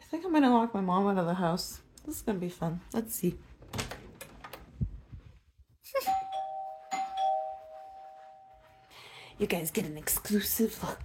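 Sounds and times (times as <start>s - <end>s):
speech: 0.1s - 3.5s, 9.4s - 11.0s
electronic doorbell chiming: 5.9s - 8.9s.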